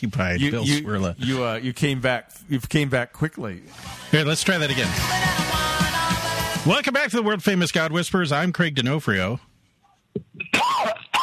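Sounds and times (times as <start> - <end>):
speech: 0.0 - 5.7, 6.6 - 9.5
recorded harsh raspy cough played as a sound effect: 10.4 - 11.2.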